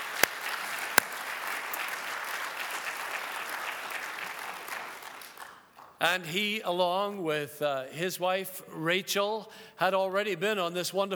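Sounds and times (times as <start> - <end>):
applause from a sizable audience: 0.0 - 6.0
speech: 6.0 - 11.1.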